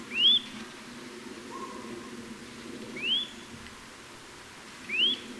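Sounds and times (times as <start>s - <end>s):
Eurasian nuthatch calls, Sitta europaea: 0.1s - 0.5s, 3.0s - 3.4s, 4.9s - 5.3s.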